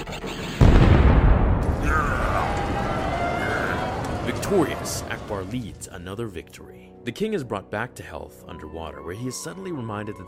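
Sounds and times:
missiles firing and exploding in a battle: 0.6s - 5.8s
speech: 4.5s - 10.2s.

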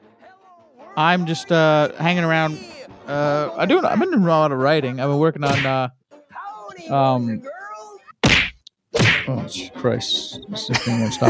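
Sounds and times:
speech: 1.0s - 6.0s, 6.8s - 7.5s, 9.3s - 11.2s
laughter: 1.1s - 4.7s, 10.5s - 11.2s
punching sound effects of a clown being beaten: 5.4s - 5.8s, 8.2s - 9.4s.

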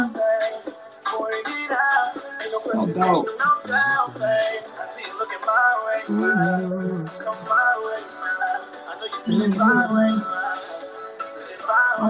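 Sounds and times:
song with layered harmonies and female backing vocals over full instrumental mix: 0.0s - 12.0s
speech: 2.7s - 4.6s, 6.1s - 7.4s.

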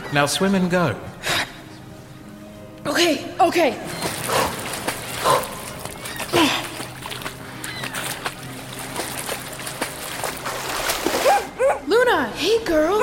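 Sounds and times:
noisy outdoor background: 0.0s - 13.0s
speech: 0.1s - 1.1s, 3.0s - 4.4s
dog barking: 5.2s - 5.6s, 11.2s - 11.9s.

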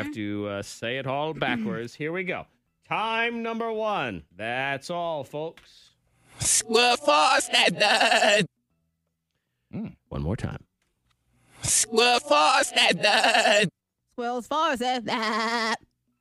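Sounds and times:
speech: 0.1s - 8.6s, 9.7s - 10.7s, 11.6s - 15.9s
sheep bleating: 7.0s - 8.5s, 12.1s - 13.7s.

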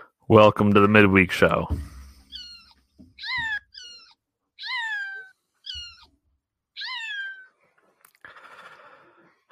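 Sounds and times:
speech: 0.3s - 1.9s
cat meowing plaintively: 2.3s - 6.1s, 6.7s - 7.5s.

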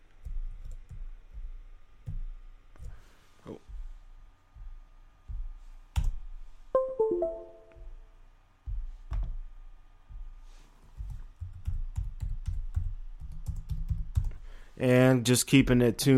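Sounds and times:
speech: 3.5s - 3.7s, 14.8s - 16.1s
short descending electronic chime: 6.8s - 7.9s
typing on a locked-up computer keyboard: 11.0s - 14.4s.

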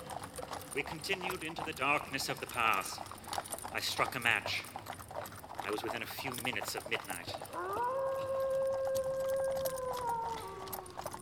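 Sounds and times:
speech: 0.8s - 4.8s, 5.7s - 7.9s
single wolf howling far off: 7.4s - 11.2s.

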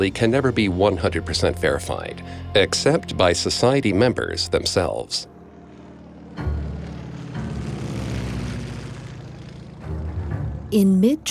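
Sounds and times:
speech: 0.0s - 5.4s, 10.7s - 11.3s
propeller fighter plane flying low overhead: 0.0s - 11.3s.

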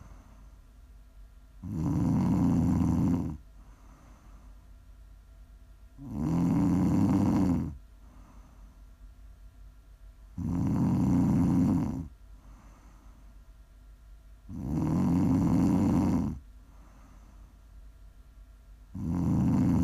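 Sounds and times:
low steady hiss: 0.0s - 19.8s
heavy rasping snoring: 1.6s - 3.4s, 6.0s - 7.8s, 10.4s - 12.9s, 14.5s - 16.4s, 18.9s - 19.8s.

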